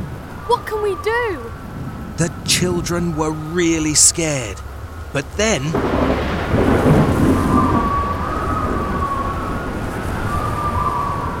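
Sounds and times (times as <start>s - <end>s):
deep rumble of thunder in a tornado storm: 0.0s - 11.3s
tornado wind roaring: 0.0s - 11.3s
rain hissing in a tornado storm: 0.3s - 9.0s
speech: 0.5s - 1.6s, 2.2s - 7.1s.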